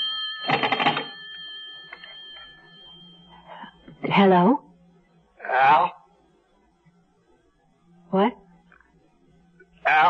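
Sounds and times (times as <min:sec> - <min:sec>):
telephone bell ringing: 0:00.0 - 0:03.8
steady high-pitched tone: 0:00.0 - 0:10.0
speech: 0:04.1 - 0:04.7, 0:05.5 - 0:06.0, 0:08.1 - 0:08.4, 0:09.9 - 0:10.0.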